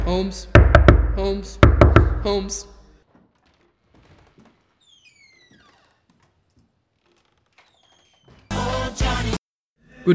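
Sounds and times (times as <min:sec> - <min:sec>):
knocking on a wooden door at the top of the stairs in a house: 0:00.0 - 0:02.5
speech: 0:00.1 - 0:00.6, 0:01.2 - 0:02.7
faint squeaks: 0:02.9 - 0:08.8.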